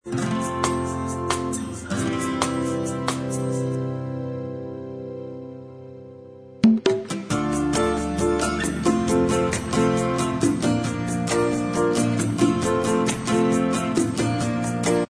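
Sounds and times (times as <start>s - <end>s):
bossa nova style instrumental music: 0.0s - 15.0s.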